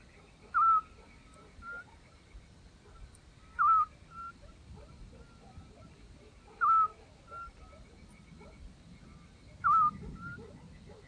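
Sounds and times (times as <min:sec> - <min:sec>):
Eurasian scops owl whistled hoots: 0:00.5 - 0:02.0, 0:03.4 - 0:04.4, 0:06.6 - 0:07.7, 0:09.6 - 0:10.5.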